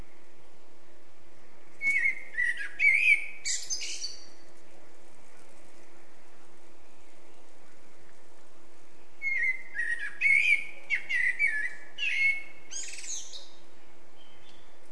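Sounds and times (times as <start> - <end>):
faint background hiss: 0.0 - 14.9
steady low hum: 0.0 - 14.9
Eurasian blackbird (Turdus merula) singing a fluted warble and twittering: 1.8 - 4.4, 9.2 - 14.8.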